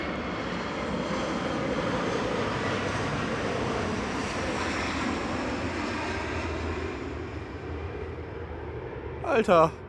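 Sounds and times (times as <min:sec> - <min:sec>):
low-flying airplane passing overhead: 0:00.0 - 0:09.8
speech: 0:09.3 - 0:09.8.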